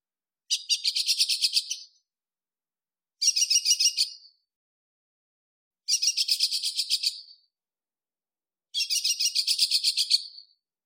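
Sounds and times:
nightingale singing rattling pulsed phrases in a desert: 0.5 - 2.1, 3.2 - 4.5, 5.9 - 7.5, 8.8 - 10.6.

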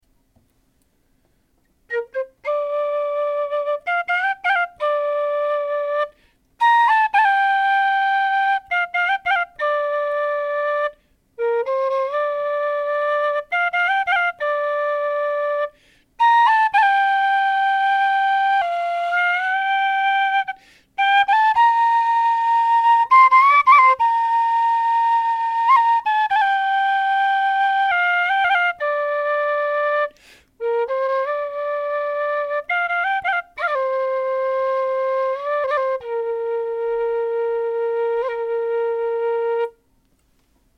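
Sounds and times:
Irish whistle playing: 1.9 - 39.8.

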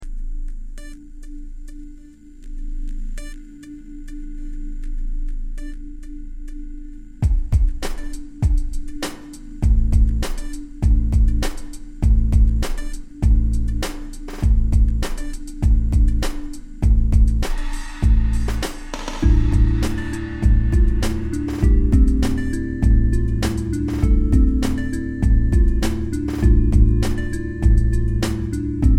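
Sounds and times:
groove loop: 7.2 - 28.9.

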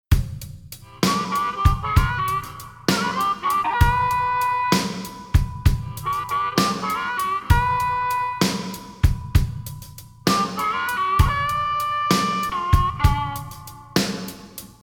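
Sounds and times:
drum: 0.0 - 14.8
harmonica: 0.8 - 14.4.

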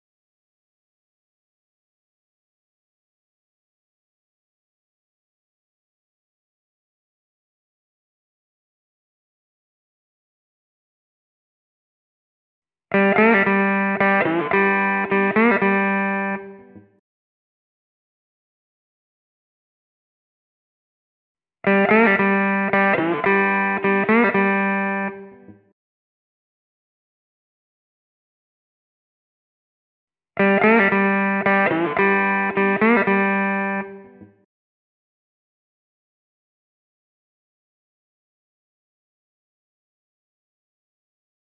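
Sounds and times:
slide guitar in G: 13.0 - 16.5, 21.7 - 25.1, 30.4 - 33.9.

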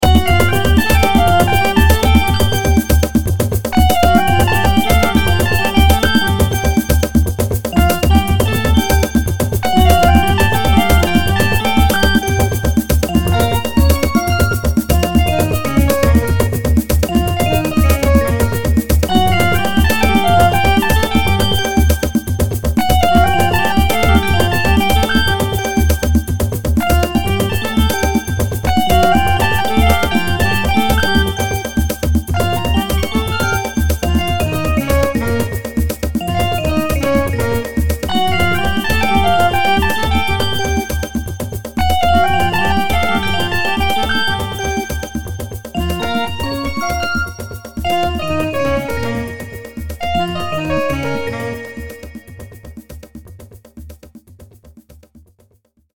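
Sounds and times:
bass: 0.0 - 52.0
creamy saxophone: 0.0 - 52.9.

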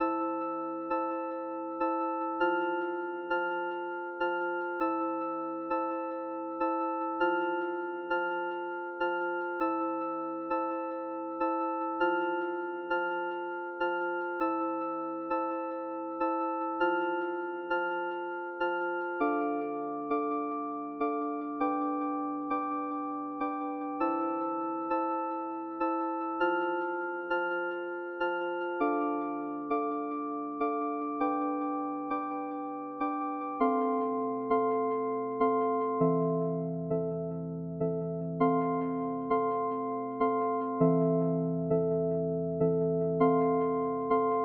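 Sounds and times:
high keys: 0.0 - 44.4.

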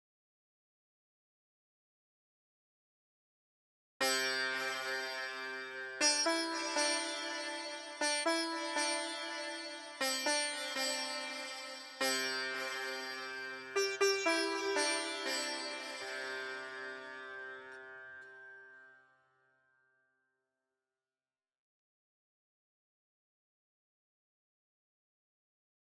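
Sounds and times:
sitar: 4.0 - 20.1.

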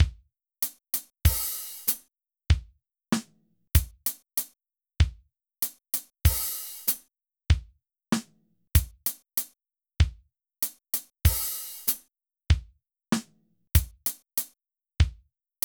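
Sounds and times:
drums playing at 96 bpm: 1.0 - 2.6, 3.8 - 4.1, 6.0 - 7.6, 8.8 - 9.2, 11.0 - 12.6, 13.8 - 14.2.

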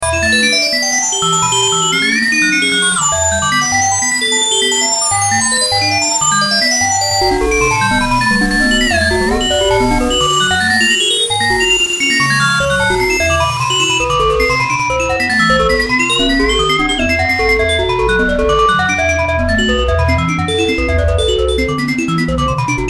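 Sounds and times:
slot machine synth sounds: 0.0 - 22.8.

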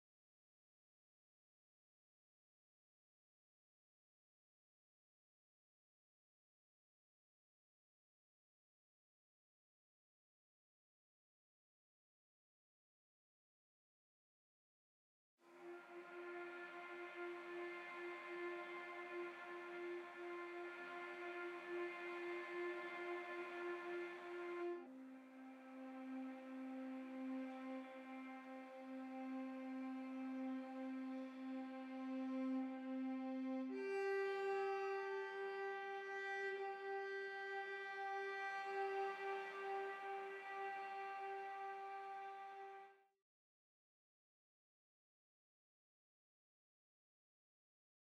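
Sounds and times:
sustained cello harmonics: 16.5 - 42.7.

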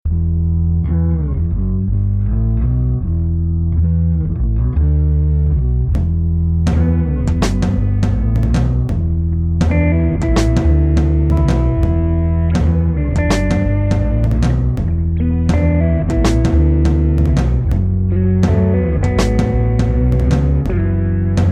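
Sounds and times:
bass guitar buzz: 0.0 - 21.4
low drum: 5.9 - 21.4.

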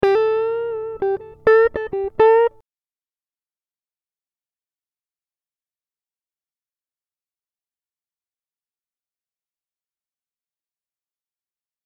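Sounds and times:
guitar riffs in E minor: 0.0 - 2.6.

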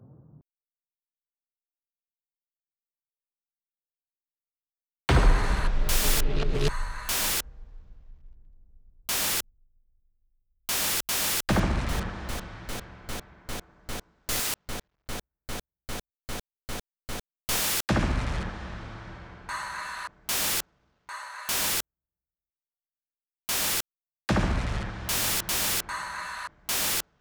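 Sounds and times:
noise effects: 5.1 - 9.7, 10.7 - 18.5, 24.7 - 27.0
percussion: 5.1 - 10.0, 10.7 - 21.8, 23.5 - 27.0.

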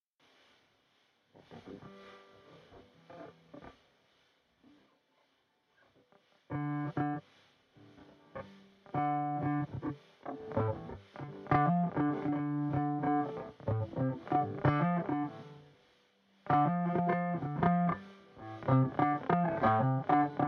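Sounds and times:
Bluesy Groove in Five Four: 7.9 - 15.7, 16.4 - 20.4.

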